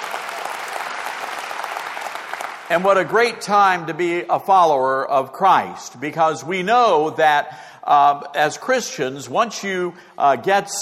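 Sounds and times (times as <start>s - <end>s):
church congregation applauding: 0.0s - 3.2s
speech: 2.7s - 10.7s.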